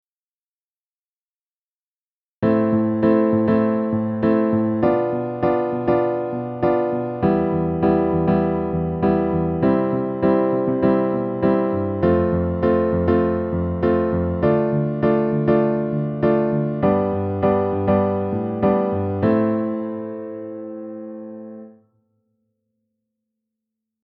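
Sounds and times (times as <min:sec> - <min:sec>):
piano minor chord: 0:02.4 - 0:21.8.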